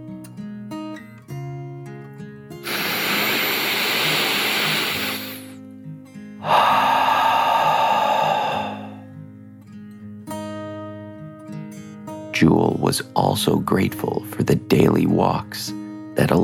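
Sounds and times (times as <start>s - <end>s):
deep breath in and out: 2.6s - 5.6s, 6.4s - 9.2s
speech: 12.5s - 16.4s.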